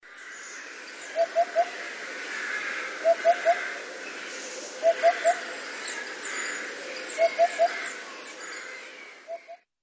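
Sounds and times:
Eurasian hoopoe calling: 1.1s - 1.8s, 3.0s - 3.8s, 4.7s - 5.6s, 7.0s - 8.0s, 9.3s - 9.6s.

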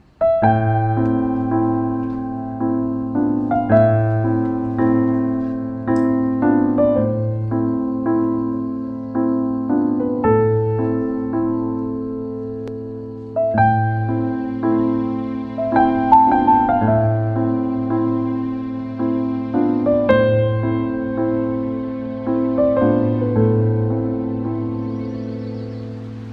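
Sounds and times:
melancholic piano: 0.0s - 26.3s.

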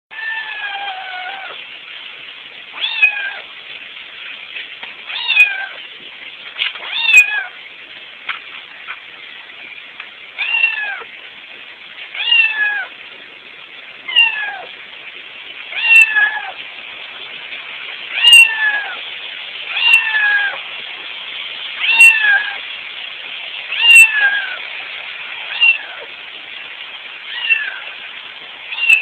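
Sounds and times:
cat meowing: 0.1s - 1.6s, 2.8s - 3.5s, 5.1s - 5.8s, 6.8s - 7.6s, 10.4s - 11.1s, 12.2s - 12.9s, 14.1s - 14.7s, 15.7s - 16.6s, 18.1s - 19.0s, 19.7s - 20.6s, 21.8s - 22.6s, 23.7s - 24.6s, 25.5s - 26.1s, 27.2s - 27.9s, 28.7s - 29.0s.

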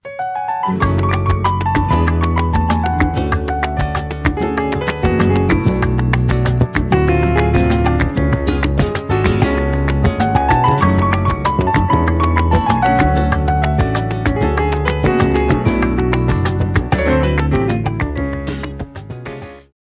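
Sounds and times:
salsa piano ringtone: 0.0s - 19.6s.

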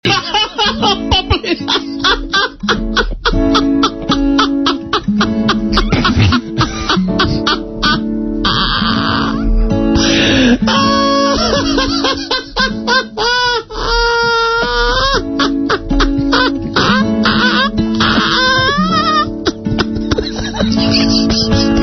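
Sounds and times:
children laughing: 0.0s - 21.8s.

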